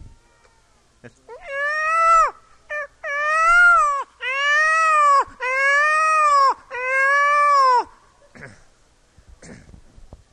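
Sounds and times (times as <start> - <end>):
voice imitating a peacock call: 1.3 - 8.0.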